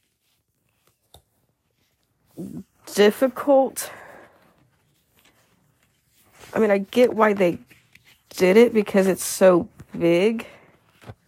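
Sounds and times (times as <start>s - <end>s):
paper rustling: 0.0s - 2.3s, 4.0s - 11.2s
page being turned in a big book in a ring binder: 0.0s - 2.7s, 4.6s - 11.2s
speech: 2.4s - 4.0s, 6.6s - 7.7s, 8.3s - 10.6s.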